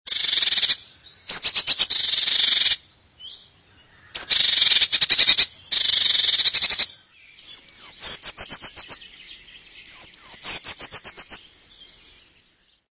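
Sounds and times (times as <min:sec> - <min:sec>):
Eurasian blue tit calling: 0:00.1 - 0:12.4.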